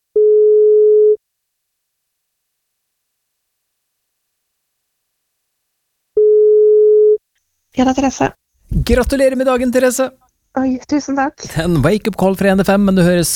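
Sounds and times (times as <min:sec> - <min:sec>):
telephone ringback tone: 0:00.2 - 0:01.2, 0:06.2 - 0:07.2
speech: 0:07.8 - 0:13.3.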